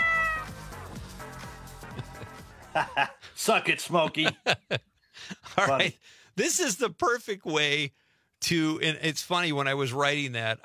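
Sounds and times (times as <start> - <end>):
cat meowing: 0.0 - 0.6
laughter: 1.8 - 6.0
speech: 2.8 - 10.6.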